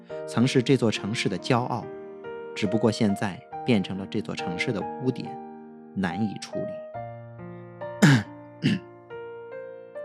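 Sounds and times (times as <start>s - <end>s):
speech: 0.1s - 2.0s, 2.6s - 6.8s
short forceful deliberate coughs: 8.0s - 8.8s.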